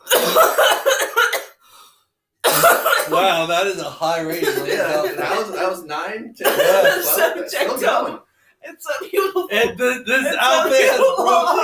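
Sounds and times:
harsh repeated coughing: 0.0 - 1.6, 2.4 - 3.2, 6.4 - 8.0
faint breath: 1.6 - 2.2
speech: 3.2 - 11.6
laughter: 4.2 - 5.8, 10.3 - 11.6.

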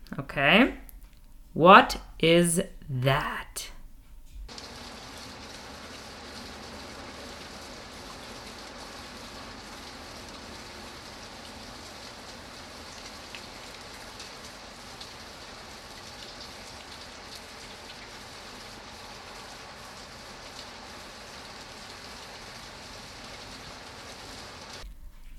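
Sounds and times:
speech: 0.4 - 0.8, 1.6 - 3.7
steady rain pattering on a surface: 4.5 - 24.8.

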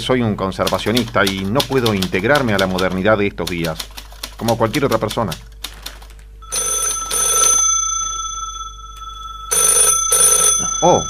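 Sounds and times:
speech: 0.0 - 5.5, 10.8 - 11.0
telephone ringing with trilling bell tones: 6.4 - 11.0.

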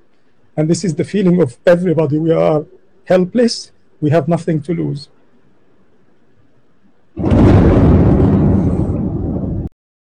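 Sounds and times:
speech: 0.6 - 5.1
loud explosion with deep rumbling roar: 7.2 - 9.7.

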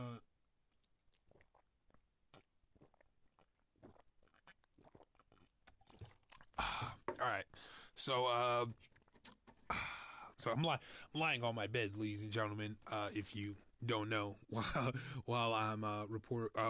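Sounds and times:
person sipping water: 0.8 - 11.1
speech: 7.2 - 9.0, 9.7 - 16.6.

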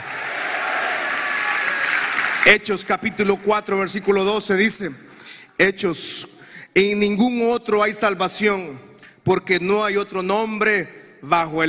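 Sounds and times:
audience applauding at an evening church service: 0.0 - 3.5
speech: 2.5 - 11.6.

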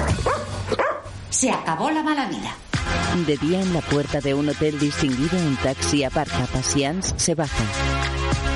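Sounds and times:
dog barking and yipping at a woman: 0.2 - 1.2
speech: 1.4 - 8.5.

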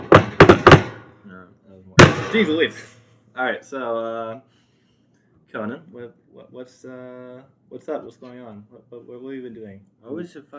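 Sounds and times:
firm knocking on a wooden table: 0.0 - 1.0
speech: 1.4 - 4.6, 5.5 - 10.5.

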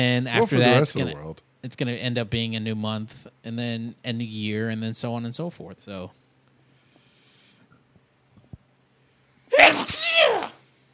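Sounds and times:
speech: 0.0 - 6.2
person sneezing loudly: 9.5 - 10.6.

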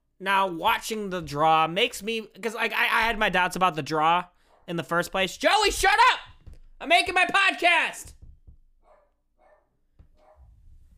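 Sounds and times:
speech: 0.2 - 8.2
dog barking: 8.8 - 10.6.

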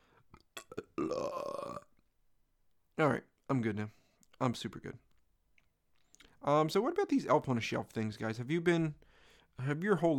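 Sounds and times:
loud croaky burp: 0.5 - 2.0
speech: 3.0 - 5.1, 6.4 - 9.0, 9.6 - 10.1.

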